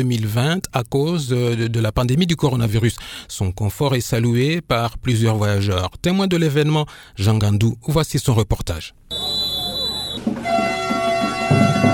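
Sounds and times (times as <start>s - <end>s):
speech: 0.0s - 9.2s
horn of a train leaving the station at Lubumbashi: 10.4s - 11.9s.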